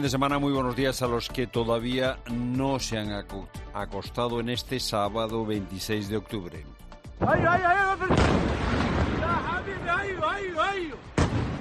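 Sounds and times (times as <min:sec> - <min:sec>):
speech: 0:00.0 - 0:08.5
bombs exploding over a city during an overnight air strike on Tehran: 0:07.2 - 0:10.2, 0:11.1 - 0:11.5.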